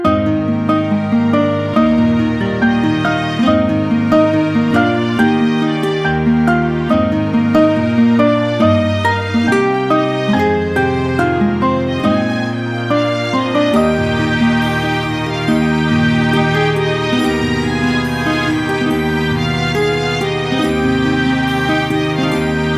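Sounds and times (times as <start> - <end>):
background music: 0.1 - 22.7.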